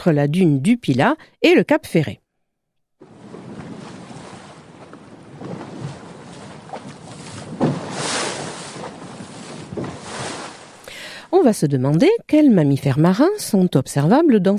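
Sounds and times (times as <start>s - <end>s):
speech: 0.0s - 2.2s, 11.4s - 14.5s
wind rushing across the microphone on the sea: 3.0s - 10.8s
sea water washing and splashing against a pinasse boat hull: 3.0s - 10.9s.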